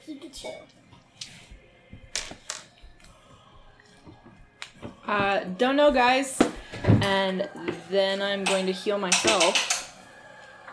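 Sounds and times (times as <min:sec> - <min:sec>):
speech: 0:00.1 - 0:00.8, 0:05.1 - 0:06.4, 0:07.0 - 0:09.7
small hard dice set down on a table: 0:02.2 - 0:02.7.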